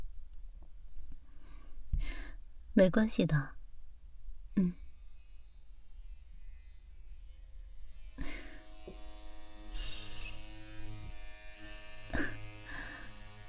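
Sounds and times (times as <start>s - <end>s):
speech: 2.8s - 3.6s, 4.6s - 4.8s
electric hair clippers buzzing during a haircut: 7.8s - 13.4s.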